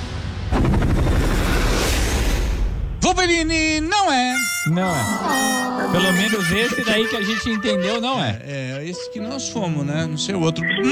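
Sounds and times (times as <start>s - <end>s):
loud explosive boom with crackling rumble: 0.1s - 3.9s
speech: 3.2s - 10.9s
laughter: 4.8s - 9.6s.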